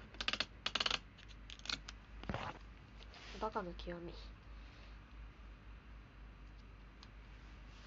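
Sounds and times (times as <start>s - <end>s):
tape crackling while repairing broken earphones: 0.0s - 3.1s
speech: 3.4s - 4.4s.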